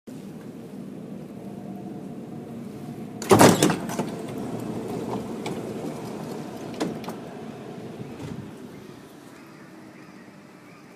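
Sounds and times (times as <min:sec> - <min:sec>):
fourth generation S-tog Litra SA train exterior doors opening: 0:01.5 - 0:09.0.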